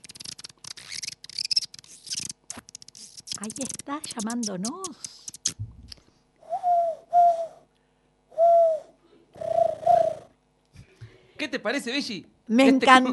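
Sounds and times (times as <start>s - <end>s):
speech: 3.4s - 5.6s, 11.5s - 13.1s
dove cooing: 6.5s - 7.6s, 8.4s - 10.4s.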